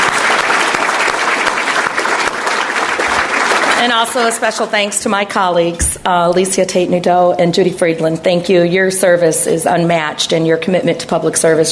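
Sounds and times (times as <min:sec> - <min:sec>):
audience clapping: 0:00.0 - 0:05.2
speech: 0:03.8 - 0:11.6.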